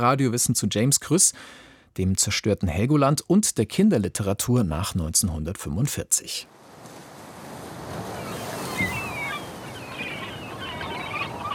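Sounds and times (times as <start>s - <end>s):
speech: 0.0s - 6.6s
wind: 6.4s - 11.5s
steady wash of surf: 6.5s - 11.5s
seagulls crying: 8.0s - 11.5s.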